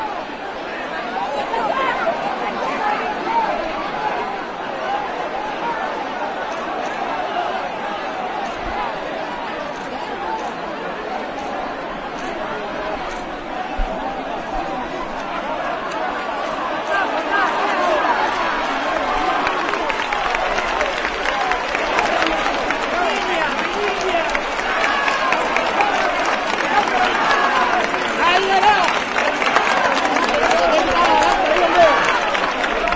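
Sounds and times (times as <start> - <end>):
large crowd chattering while leaving a temple: 0.0 - 32.9.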